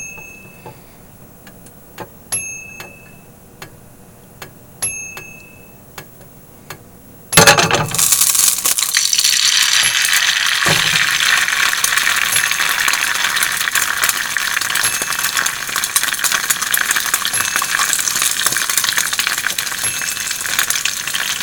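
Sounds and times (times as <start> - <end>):
egg frying and sizzling in a pan: 7.4 - 21.3.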